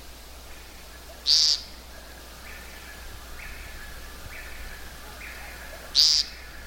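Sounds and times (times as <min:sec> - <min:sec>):
woodcock giving buzzy unmusical zeep calls at twilight: 0:00.5 - 0:06.6
another bird repeating faint notes: 0:05.3 - 0:06.4.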